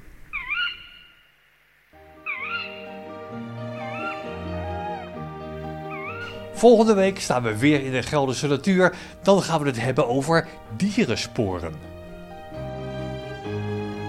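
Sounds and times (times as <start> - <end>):
tawny owls calling: 0.2 - 1.3, 2.2 - 6.5
sustained tonal musical backdrop: 2.0 - 14.0
speech: 6.6 - 11.9.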